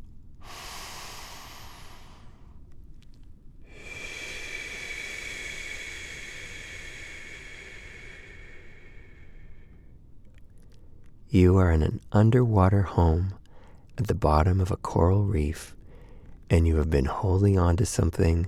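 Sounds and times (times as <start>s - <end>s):
deep breathing during a guided relaxation exercise: 0.4s - 11.3s, 12.8s - 14.0s, 15.6s - 16.5s
speech: 11.3s - 13.4s, 14.0s - 15.8s, 16.5s - 18.4s.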